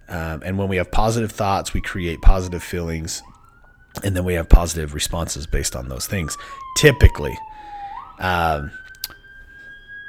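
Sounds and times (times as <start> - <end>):
emergency vehicle siren wailing on the street outside an office: 0.0 - 10.0
speech: 0.1 - 3.4, 4.0 - 8.8.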